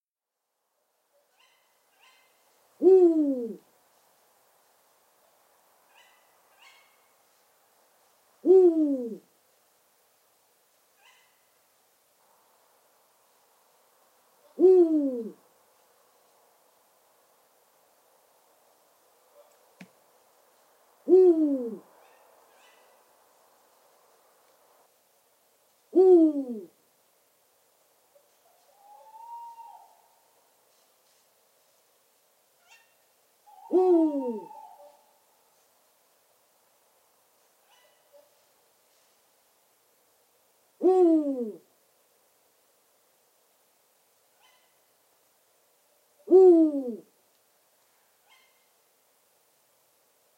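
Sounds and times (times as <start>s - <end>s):
eagle owl: 1.3s - 3.7s, 5.9s - 7.1s, 8.4s - 9.3s, 11.0s - 11.5s, 14.4s - 15.4s, 21.0s - 23.1s, 25.9s - 26.8s, 28.2s - 30.9s, 32.6s - 35.2s, 37.6s - 38.3s, 40.8s - 41.7s, 44.4s - 44.8s, 46.2s - 47.1s, 48.0s - 48.7s.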